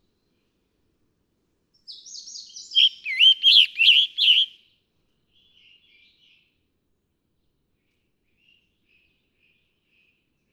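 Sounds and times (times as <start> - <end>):
scarlet tanager singing: 1.9 - 4.6.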